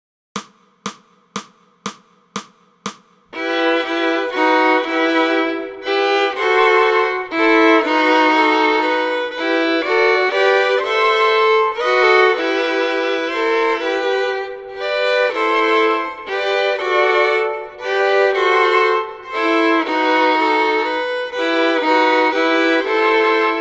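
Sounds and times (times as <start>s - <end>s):
fiddle playing Christmas music: 3.4s - 23.6s.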